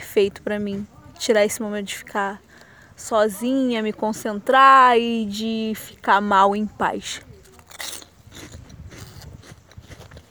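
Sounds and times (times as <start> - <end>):
speech: 0.2 - 7.3
crunchy bite and chewing of a skinny cheese biscuit: 7.4 - 10.3.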